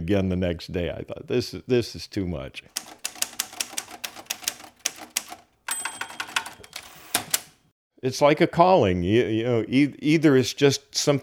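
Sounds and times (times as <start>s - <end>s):
speech: 0.0s - 3.0s, 8.0s - 11.2s
manual typewriter keys clacking: 2.7s - 7.6s.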